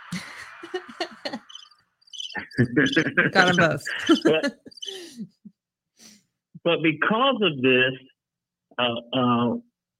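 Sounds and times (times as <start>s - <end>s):
laughter: 0.0s - 1.5s, 2.4s - 5.3s, 6.7s - 7.9s
cricket chirping sound effect from a soundboard: 1.4s - 5.0s
speech: 2.6s - 5.3s, 6.6s - 8.1s, 8.8s - 9.7s.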